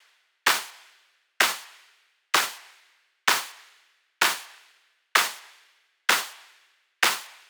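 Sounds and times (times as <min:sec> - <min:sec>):
melodic techno drum loop with claps: 0:00.5 - 0:00.8, 0:01.4 - 0:01.7, 0:02.4 - 0:02.7, 0:03.3 - 0:03.6, 0:04.2 - 0:04.5, 0:05.2 - 0:05.5, 0:06.1 - 0:07.4.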